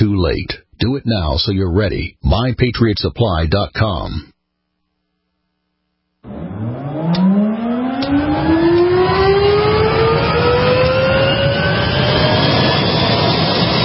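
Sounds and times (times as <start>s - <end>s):
speech: 0.2s - 4.3s
sports car engine revving and accelerating hard: 6.2s - 13.7s.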